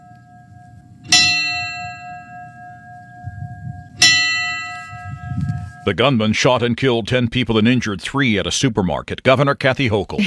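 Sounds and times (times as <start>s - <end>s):
resonant memorial bell strikes in Buffalo, New York: 0.0s - 6.0s
speech: 5.8s - 10.2s.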